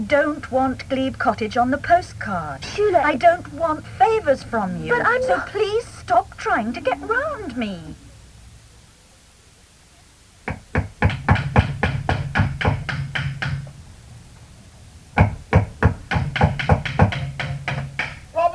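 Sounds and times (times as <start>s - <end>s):
speech: 0.0s - 8.0s
rapid loud knocking on a wooden front door: 10.5s - 13.7s, 15.2s - 18.2s.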